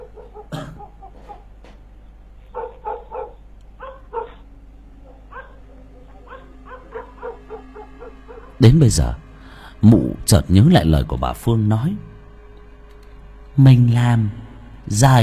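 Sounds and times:
neighbours' dogs barking and yapping: 0:00.0 - 0:08.6
speech: 0:08.6 - 0:09.2, 0:09.8 - 0:12.1, 0:13.6 - 0:15.2.

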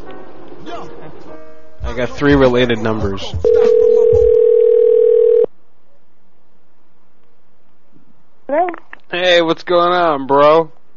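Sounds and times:
speech: 0:00.7 - 0:04.2, 0:08.5 - 0:10.8
telephone dial tone: 0:03.5 - 0:05.5.

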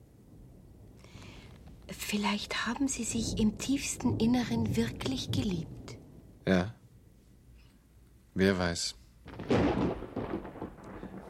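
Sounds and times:
thunder from an approaching thunderstorm rumbling: 0:00.0 - 0:06.8, 0:09.2 - 0:11.2
speech: 0:01.9 - 0:05.8, 0:06.5 - 0:06.8, 0:08.4 - 0:09.8.

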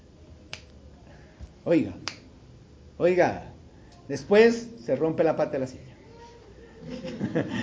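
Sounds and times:
preacher snapping his fingers during a sermon: 0:00.5 - 0:00.8, 0:02.0 - 0:02.3
speech: 0:01.6 - 0:02.2, 0:03.0 - 0:03.5, 0:04.1 - 0:05.9, 0:06.8 - 0:07.6
laughter: 0:06.8 - 0:07.6.

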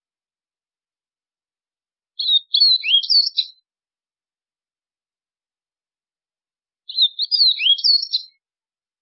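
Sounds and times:
white-throated seedeater song: 0:02.2 - 0:03.6, 0:06.9 - 0:08.4.

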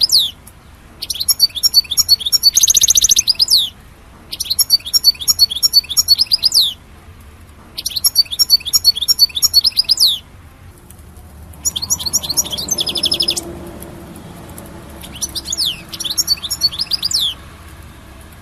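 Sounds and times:
European goldfinch singing bright twittering phrases: 0:00.0 - 0:00.4, 0:01.0 - 0:06.8, 0:07.8 - 0:10.2, 0:11.6 - 0:13.6, 0:14.9 - 0:17.5.

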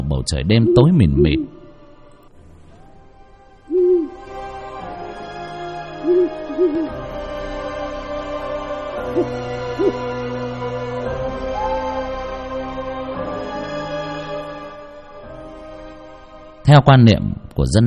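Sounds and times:
speech: 0:00.2 - 0:01.6, 0:16.7 - 0:17.8
owl hooting perched on a house door at night: 0:00.5 - 0:01.8, 0:03.6 - 0:04.3, 0:05.9 - 0:07.0, 0:09.1 - 0:10.1, 0:11.4 - 0:12.4.

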